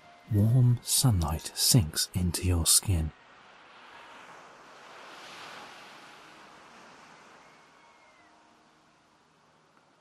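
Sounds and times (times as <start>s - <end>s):
light breeze: 0.0s - 10.0s
speech: 0.3s - 3.2s
gentle waves washing on shore: 3.2s - 8.1s.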